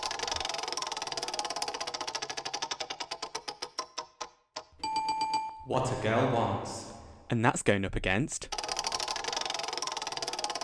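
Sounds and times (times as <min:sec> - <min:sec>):
spinning prize wheel ticking: 0:00.0 - 0:04.0, 0:08.5 - 0:10.6
speech: 0:05.7 - 0:08.6.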